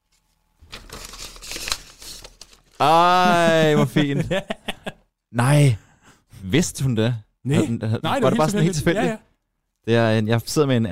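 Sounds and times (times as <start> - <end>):
gift wrapping torn and crumpled off a bottle of blood orange Weissbier: 0.0 - 3.2
speech: 2.8 - 4.6, 5.3 - 5.8, 6.4 - 10.9
laughter: 3.0 - 5.1, 7.5 - 9.2.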